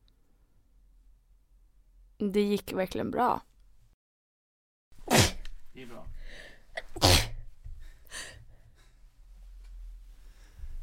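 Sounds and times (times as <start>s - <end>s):
speech: 2.2s - 3.5s, 5.8s - 7.2s
person sneezing: 5.0s - 5.4s, 6.8s - 7.4s
quiet breathing: 6.1s - 6.8s, 7.7s - 10.8s.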